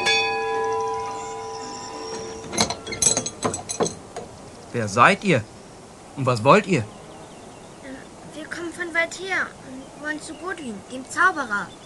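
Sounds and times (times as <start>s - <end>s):
hanging bell over a gate ringing: 0.0s - 4.6s
sharp metallic clangs: 0.0s - 4.6s
speech: 4.7s - 5.6s, 6.2s - 7.0s, 9.1s - 11.8s.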